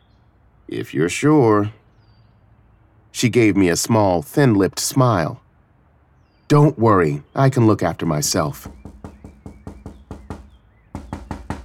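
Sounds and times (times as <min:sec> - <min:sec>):
speech: 0:00.7 - 0:01.8, 0:03.2 - 0:05.4, 0:06.5 - 0:08.8
rapid insistent knocking on a door: 0:08.6 - 0:11.6.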